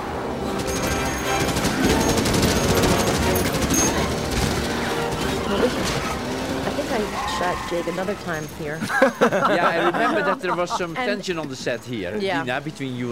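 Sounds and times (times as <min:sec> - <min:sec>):
automatic gunfire in a film scene: 0:00.7 - 0:06.8
laughter: 0:05.3 - 0:12.7
speech: 0:07.7 - 0:13.1.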